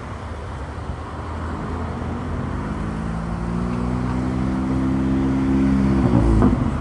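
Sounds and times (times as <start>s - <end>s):
loud modified car engine revving past: 1.4s - 6.8s.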